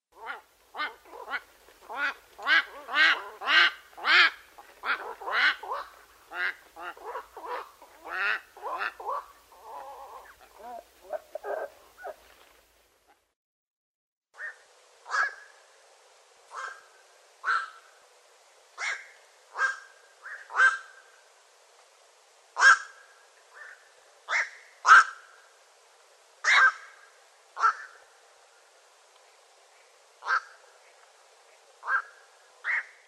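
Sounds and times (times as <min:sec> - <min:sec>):
Nycticorax nycticorax calling: 0:00.2 - 0:12.2, 0:16.5 - 0:18.0, 0:18.8 - 0:21.2, 0:22.6 - 0:25.5, 0:26.4 - 0:28.1, 0:30.2 - 0:30.8, 0:31.8 - 0:33.0.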